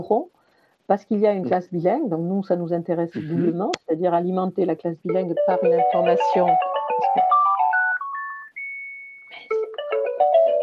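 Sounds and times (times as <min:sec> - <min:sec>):
speech: 0:00.0 - 0:07.4
mobile phone ringtone with a bright electronic melody: 0:05.1 - 0:10.6.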